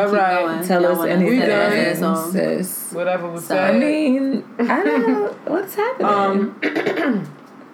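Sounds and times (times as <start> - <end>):
speech: 0.0 - 7.4
raspy throat clearing: 6.6 - 7.4.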